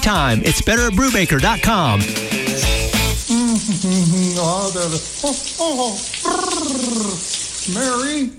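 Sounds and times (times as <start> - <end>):
speech: 0.0 - 2.8, 3.6 - 8.3
running tap water: 0.1 - 8.3
person singing or humming wordless gliding notes: 2.3 - 4.6, 5.2 - 7.3.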